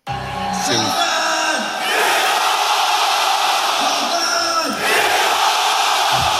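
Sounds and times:
arena crowd of about 6,000 chanting in unison: 0.0s - 6.3s
fighter yelling opponent's first name: 0.5s - 1.7s.

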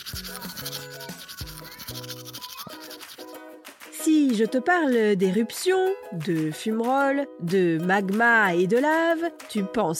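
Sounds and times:
steady scratchy brushing: 0.0s - 3.5s
speech: 0.2s - 2.5s, 4.2s - 9.9s.

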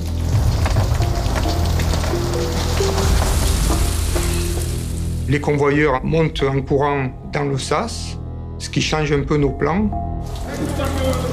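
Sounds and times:
heavy rain pouring during a storm: 0.0s - 5.5s, 10.3s - 11.3s
speech: 5.3s - 11.3s.

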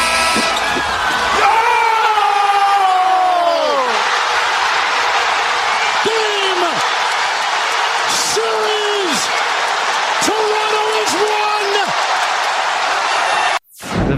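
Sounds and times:
basketball arena buzzer tone: 0.0s - 1.0s
basketball arena crowd roaring and cheering after a buzzer-beater shot: 0.0s - 13.6s.

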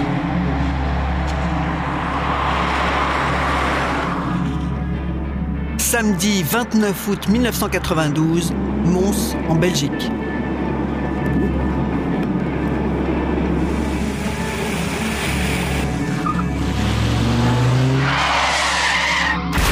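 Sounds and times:
convertible car tyres skidding off the road at night: 0.0s - 4.9s, 10.0s - 19.5s
convertible car engine droning: 0.0s - 5.8s, 8.4s - 19.6s
speech: 5.9s - 10.4s.

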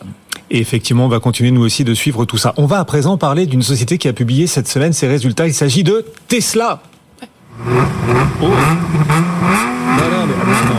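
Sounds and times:
speech: 0.5s - 6.9s, 7.6s - 10.7s
combustion-engine car engine revving: 7.5s - 10.7s.

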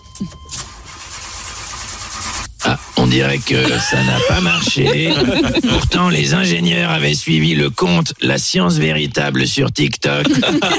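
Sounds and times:
speech: 0.2s - 0.6s, 3.1s - 10.7s
rocket engines starting up with a sputter and roar: 2.6s - 7.1s
laughter: 3.0s - 7.7s, 10.0s - 10.7s.

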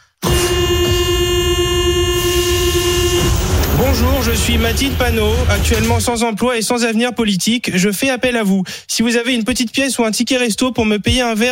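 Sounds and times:
metro train horn blaring: 0.2s - 5.9s
rumbling noise: 2.2s - 6.3s
speech: 4.2s - 11.5s.

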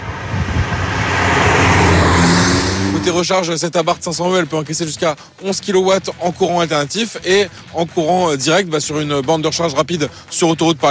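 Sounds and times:
simulated combustion engine note from an electric car: 0.0s - 4.1s
speech: 3.1s - 10.8s.

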